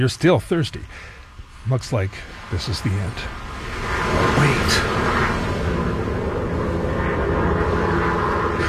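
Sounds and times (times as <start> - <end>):
speech: 0.0 - 3.5, 4.4 - 5.2
propeller rescue plane droning overhead: 0.8 - 8.6.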